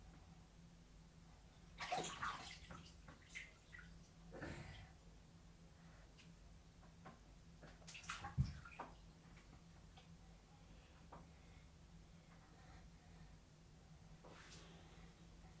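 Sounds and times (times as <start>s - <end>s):
quiet hum: 0.0s - 15.5s
water sloshing and splashing in a bathtub while washing hair: 1.6s - 5.0s, 6.1s - 11.4s.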